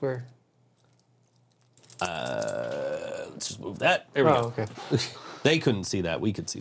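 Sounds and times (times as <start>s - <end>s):
speech: 0.0s - 0.4s, 3.4s - 6.5s
keys jangling on a keyring with a drum key: 0.8s - 2.5s.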